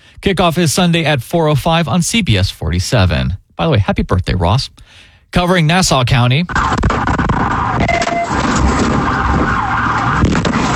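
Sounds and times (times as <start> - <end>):
speech: 0.2 - 7.1
police vehicle sirens during a vehicle pursuit: 7.4 - 10.7.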